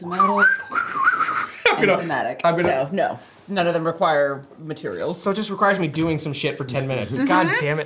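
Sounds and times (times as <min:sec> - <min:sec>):
speech: 0:00.0 - 0:00.8, 0:01.8 - 0:07.8
person standing in a road whistling: 0:00.1 - 0:01.7.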